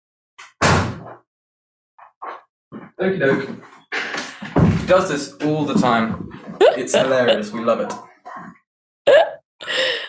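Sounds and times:
lounge door thudding shut: 0.6 - 1.1
speech: 2.2 - 4.0, 4.9 - 8.6
laughter: 6.6 - 8.0.

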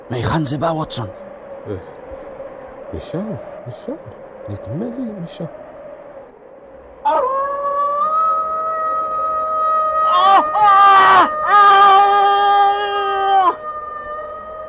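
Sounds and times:
speech: 0.1 - 2.0, 2.9 - 5.6
dog howling: 7.0 - 14.6.

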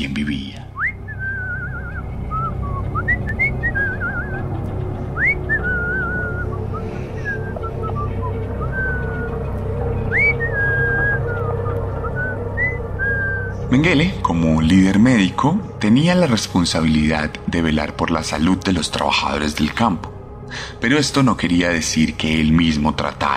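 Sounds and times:
steady low rumble: 0.7 - 22.6
person whistling a wandering tune: 0.8 - 4.5, 5.1 - 9.4, 10.1 - 13.7
speech: 13.8 - 23.3.

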